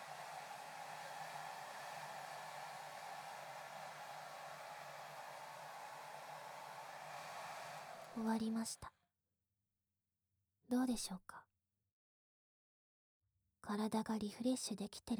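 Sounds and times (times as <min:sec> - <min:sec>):
hair dryer blowing on hair at the nape and hairline: 0:00.0 - 0:08.6
speech: 0:08.2 - 0:09.0, 0:10.9 - 0:11.5, 0:13.6 - 0:15.1.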